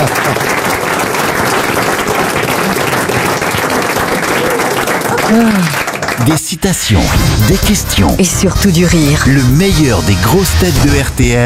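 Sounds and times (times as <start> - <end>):
studio audience applause: 0.0 - 6.6
speech: 5.3 - 11.4.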